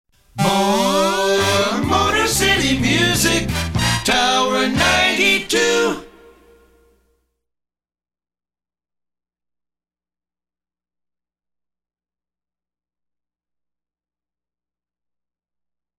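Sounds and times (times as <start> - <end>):
jingle music: 0.4 - 6.8.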